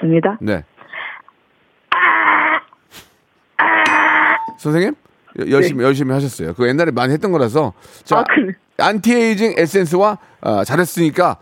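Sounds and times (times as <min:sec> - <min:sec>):
speech: 0:00.0 - 0:00.7, 0:04.5 - 0:11.4
voice imitating the grand doorbell chime of a big rich family's house: 0:03.9 - 0:04.6.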